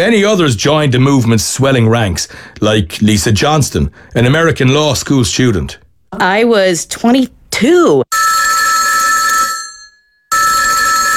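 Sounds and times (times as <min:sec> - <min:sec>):
speech: 0:00.0 - 0:08.3
loud telephone bell ringing: 0:08.1 - 0:11.1.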